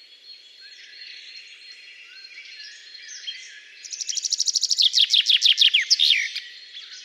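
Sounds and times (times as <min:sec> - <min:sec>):
soft background bird chatter: 0:00.0 - 0:07.0
common chaffinch Fringilla coelebs singing: 0:02.0 - 0:07.0.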